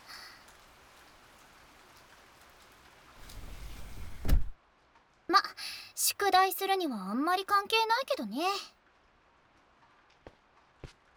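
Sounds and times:
steady rain falling: 0.0s - 11.1s
speech: 6.2s - 8.8s.

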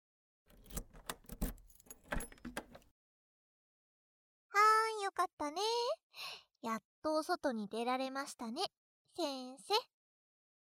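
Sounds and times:
keys jingling and clinking: 0.5s - 2.9s
metallic rattles and scrapes of a lock being worked open: 0.5s - 2.9s
speech: 5.2s - 9.9s.

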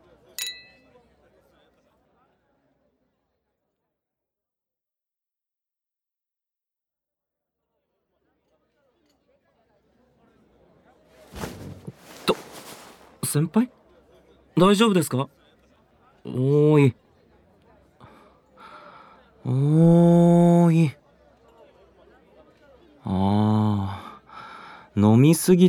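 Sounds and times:
glasses clinking in a toast: 0.4s - 1.0s
soft murmuring: 8.4s - 25.1s
rustling: 11.1s - 13.5s
speech: 13.3s - 13.8s, 14.6s - 15.4s, 16.2s - 17.0s, 19.4s - 21.0s, 23.1s - 24.0s, 25.0s - 25.6s.

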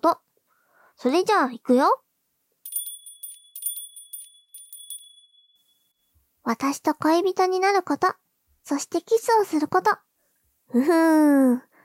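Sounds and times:
speech: 0.0s - 0.2s, 1.0s - 2.0s, 6.5s - 10.0s, 10.7s - 11.7s
small hand bell jingling: 2.6s - 6.2s.

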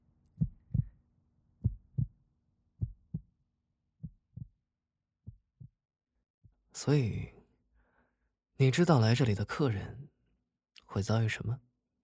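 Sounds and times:
heartbeat thumping in lub-dub pairs: 0.4s - 0.9s, 1.6s - 2.1s, 2.8s - 3.3s, 4.0s - 4.6s, 5.2s - 5.8s
speech: 6.8s - 7.4s, 8.6s - 10.1s, 10.9s - 11.7s.

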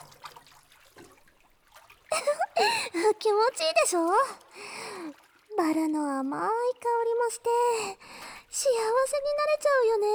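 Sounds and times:
water splashing in a bubble bath: 0.0s - 7.1s
water sloshing and dribbling in a rose-scented bubble bath while washing arms: 0.0s - 10.1s
speech: 2.6s - 4.4s, 5.6s - 10.1s.

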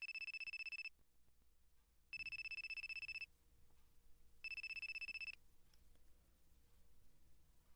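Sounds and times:
telephone ringing with an electronic trill: 0.0s - 0.9s, 2.2s - 3.3s, 4.4s - 5.4s.

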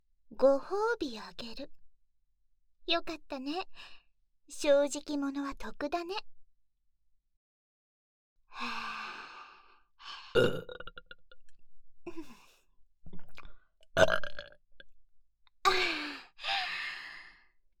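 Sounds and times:
speech: 0.4s - 1.8s, 2.9s - 6.3s, 8.6s - 9.0s, 10.3s - 10.9s, 14.0s - 14.4s
breathy sighs and exhalations: 8.6s - 10.4s, 15.7s - 17.5s
person burping: 10.3s - 11.2s, 14.0s - 14.6s.

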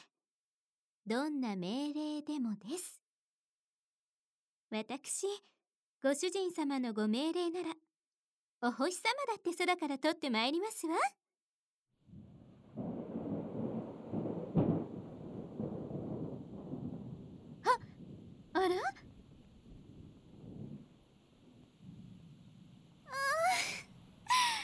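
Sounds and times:
speech: 1.1s - 3.0s, 4.7s - 7.8s, 8.6s - 11.2s, 18.6s - 19.1s
low rolling thunder: 12.1s - 24.3s
steady rain: 12.1s - 24.6s
woman giving short surprised exclamations: 23.1s - 24.6s.

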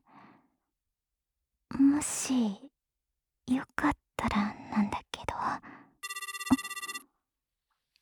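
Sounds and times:
speech: 1.9s - 2.7s, 3.5s - 5.0s
telephone ringing with fast warbling electronic trill: 6.0s - 7.1s.

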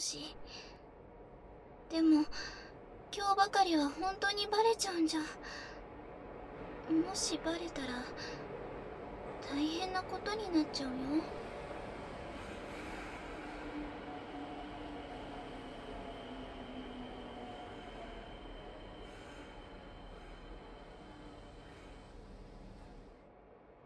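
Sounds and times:
speech: 0.0s - 0.6s, 1.9s - 2.6s, 3.2s - 5.7s, 6.9s - 8.5s, 9.4s - 11.4s
train rolling into a station with wheels rumbling on rails: 4.1s - 23.2s
faint metallic squealing of train wheels: 12.5s - 23.2s.

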